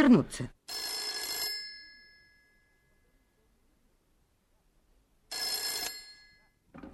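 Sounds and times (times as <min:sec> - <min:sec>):
speech: 0:00.0 - 0:00.6
old-style telephone bell ringing with a harsh metallic trill: 0:00.7 - 0:03.0, 0:05.3 - 0:06.6.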